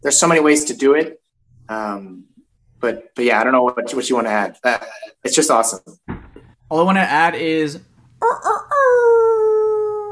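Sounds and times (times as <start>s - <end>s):
speech: 0.0s - 9.1s
human voice imitating a half wolf howl half rooster crow: 8.2s - 10.0s.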